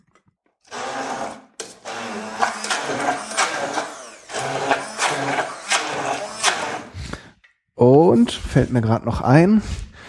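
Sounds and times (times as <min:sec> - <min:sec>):
immersion blender pureeing thick hummus paste with cumin and olive oil: 0:00.7 - 0:07.1
speech: 0:08.2 - 0:09.8.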